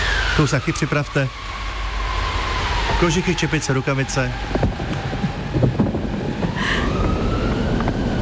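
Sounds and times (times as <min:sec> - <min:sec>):
strong polar wind gusting and howling: 0:00.0 - 0:08.2
speech: 0:00.4 - 0:01.6, 0:03.0 - 0:04.8.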